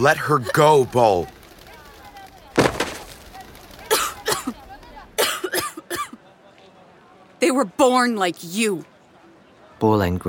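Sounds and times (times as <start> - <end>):
speech: 0.0 - 1.4, 7.4 - 8.9, 9.8 - 10.2
woman coughing and gasping while being choked and lifted by one hand: 3.9 - 4.6, 5.2 - 6.2.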